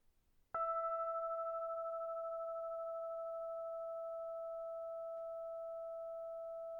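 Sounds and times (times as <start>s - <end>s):
bell plate note E5: 0.6s - 6.6s.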